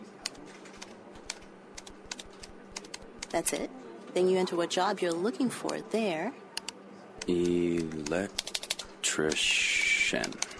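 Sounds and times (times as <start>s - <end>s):
typing a website address on a computer keyboard: 0.2s - 3.4s, 6.6s - 10.5s
speech: 3.3s - 6.4s, 7.2s - 8.5s, 9.2s - 10.5s.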